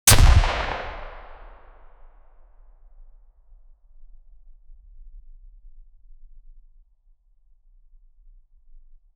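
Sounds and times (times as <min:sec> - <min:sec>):
suppressed submachine gun firing single subsonic 9mm shot: 0:00.1 - 0:01.7.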